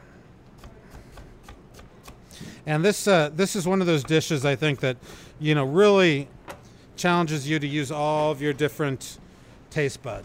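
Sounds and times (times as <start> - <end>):
knife dicing cored Honeycrisp apples: 0.5 - 5.0
speech: 2.6 - 6.4, 7.0 - 10.2.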